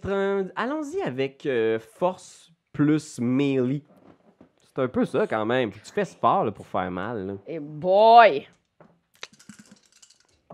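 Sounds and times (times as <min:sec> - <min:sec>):
speech: 0:00.0 - 0:03.9, 0:04.8 - 0:08.6
small dice clattering across a hard tabletop: 0:09.2 - 0:10.5.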